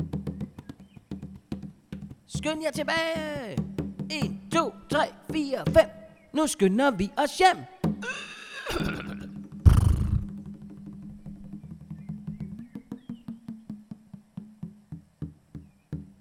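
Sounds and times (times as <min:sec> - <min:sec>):
speech: 0:02.3 - 0:08.9
horse whinnying during a ride: 0:08.0 - 0:10.3.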